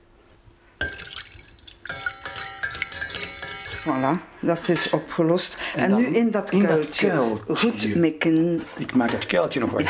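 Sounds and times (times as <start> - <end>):
small drips and splashes of milk: 0.8 - 3.3
yeast stirred into lukewarm milk in a small pan: 0.8 - 5.0
speech: 3.8 - 9.8.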